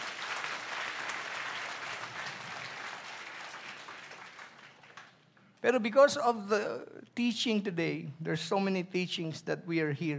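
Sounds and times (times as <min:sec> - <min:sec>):
congregation clapping during a worship service: 0:00.0 - 0:05.2
speech: 0:05.6 - 0:10.1.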